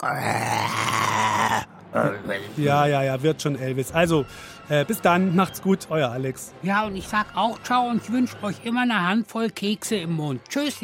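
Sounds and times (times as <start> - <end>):
speech: 0.0 - 1.0, 2.0 - 10.8
person voicing a throaty growl imitating a lion's roar: 0.0 - 1.7.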